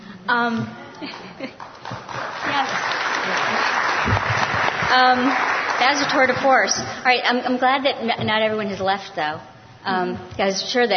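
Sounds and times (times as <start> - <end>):
speech: 0.3 - 3.9, 4.9 - 10.9
audience clapping: 1.0 - 6.9.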